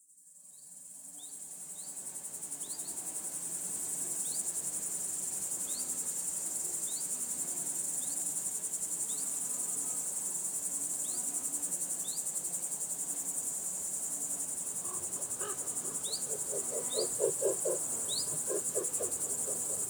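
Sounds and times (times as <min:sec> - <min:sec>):
insects in a field: 0:00.0 - 0:19.8
grasshoppers in a field: 0:14.3 - 0:19.8
crows in a field: 0:14.7 - 0:19.8.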